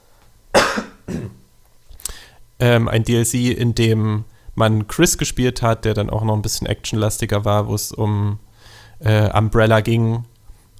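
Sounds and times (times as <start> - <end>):
rough coughs: 0.6 - 1.4
speech: 2.6 - 10.7.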